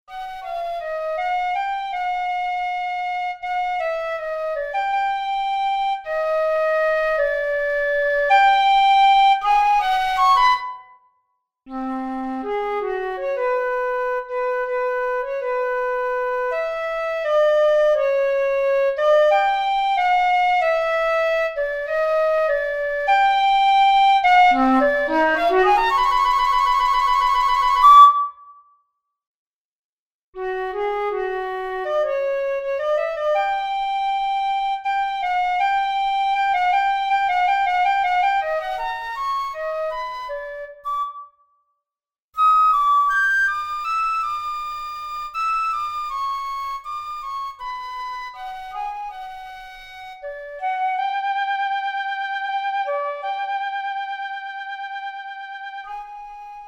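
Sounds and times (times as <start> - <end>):
flute solo: 0.1 - 28.8, 30.4 - 41.6, 42.4 - 56.6.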